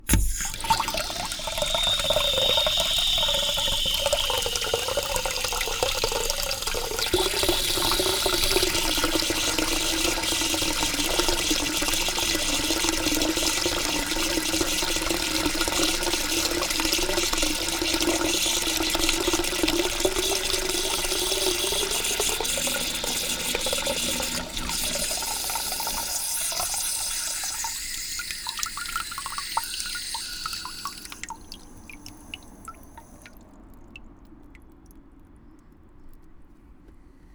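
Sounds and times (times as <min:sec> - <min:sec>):
bathroom toilet tank: 0:00.0 - 0:33.4.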